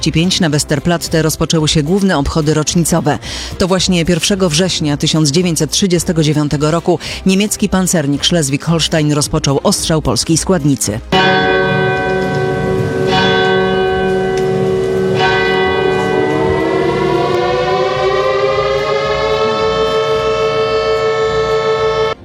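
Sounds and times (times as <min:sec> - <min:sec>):
speech: 0:00.0 - 0:11.5
air-raid sirens wailing at a World War II anniversary commemoration at Westerplatte, Poland: 0:11.1 - 0:22.2
sharp ringing strikes: 0:11.2 - 0:22.2.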